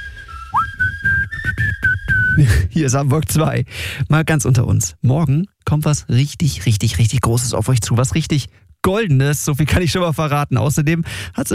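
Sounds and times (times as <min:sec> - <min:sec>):
person whistling a tune on a live radio show: 0:00.0 - 0:02.7
low rhythmic thuds: 0:00.6 - 0:02.8
speech: 0:02.4 - 0:11.5.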